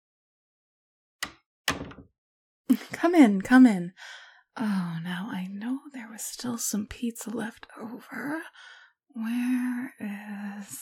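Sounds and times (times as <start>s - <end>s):
wooden door swinging shut: 1.2s - 2.1s
speech: 2.7s - 10.8s.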